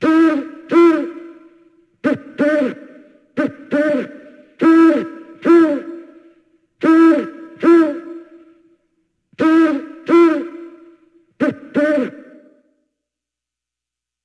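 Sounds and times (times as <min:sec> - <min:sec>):
owl giving paired hoots: 0:00.0 - 0:06.2, 0:06.8 - 0:08.5, 0:09.4 - 0:12.5.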